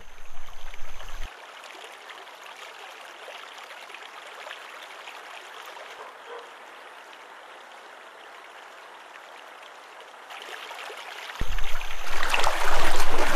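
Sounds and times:
river water flowing over rocks: 0:00.0 - 0:13.3
otter diving and surfacing: 0:11.4 - 0:13.3.

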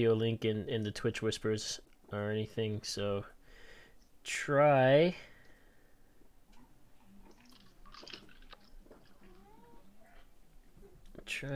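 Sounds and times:
speech: 0:00.0 - 0:03.4, 0:04.2 - 0:05.3, 0:11.2 - 0:11.5
crunching and chewing: 0:06.5 - 0:10.4
cat meowing as a dog steps on it: 0:09.2 - 0:10.2.

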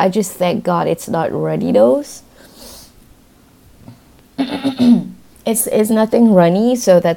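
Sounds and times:
speech: 0:00.0 - 0:02.3, 0:04.4 - 0:07.1
person clearing throat: 0:03.8 - 0:05.2
person coughing in rough voiced bursts: 0:04.4 - 0:05.2.

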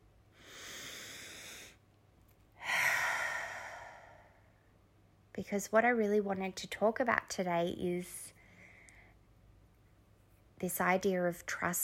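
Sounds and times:
deep breath: 0:00.3 - 0:01.8, 0:02.6 - 0:04.6
speech: 0:05.4 - 0:08.4, 0:10.6 - 0:11.8.

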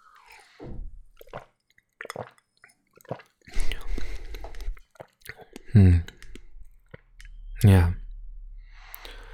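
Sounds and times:
person sipping a drink with slurps and swallows: 0:00.0 - 0:07.3
speech: 0:05.8 - 0:06.1.

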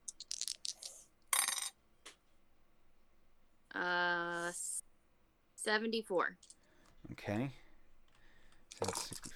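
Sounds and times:
percentile dice clattering across a hard tabletop: 0:00.1 - 0:01.7
speech: 0:03.8 - 0:04.6, 0:05.6 - 0:07.6.

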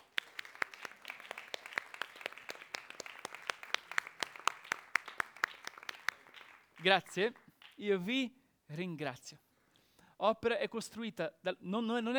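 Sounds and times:
crowd applauding with many hands clapping: 0:00.0 - 0:07.8
speech: 0:06.8 - 0:09.5, 0:10.2 - 0:12.1.

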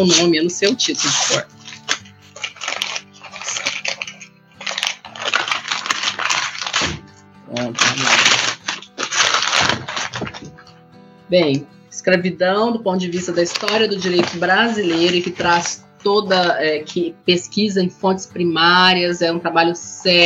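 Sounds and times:
speech: 0:00.0 - 0:01.6, 0:11.3 - 0:20.2
paper crinkling and tearing as a paper-wrapped package is unwrapped: 0:00.0 - 0:10.7, 0:13.1 - 0:16.5.

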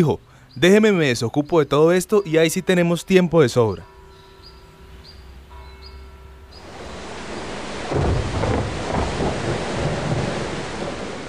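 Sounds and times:
speech: 0:00.0 - 0:03.9
wind in a heavy thunderstorm: 0:00.0 - 0:11.2
deep rolling thunder in a heavy thunderstorm: 0:06.6 - 0:11.2
steady rain in a heavy thunderstorm: 0:06.6 - 0:11.2.

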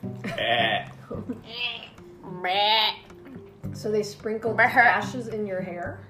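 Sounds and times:
speech: 0:00.2 - 0:01.8, 0:02.4 - 0:02.9, 0:03.8 - 0:06.0
person imitating wavering nasal goat bleats: 0:00.3 - 0:03.1.

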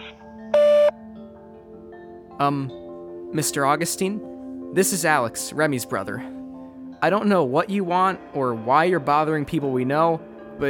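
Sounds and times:
sharp electronic voicemail beep: 0:00.0 - 0:01.0
speech: 0:02.4 - 0:06.4, 0:07.0 - 0:10.6.

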